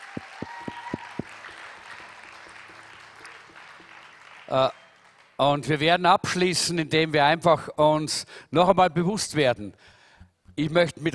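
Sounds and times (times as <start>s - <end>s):
audience applause: 0.0s - 5.4s
speech: 4.5s - 4.8s, 5.4s - 10.0s, 10.6s - 11.1s.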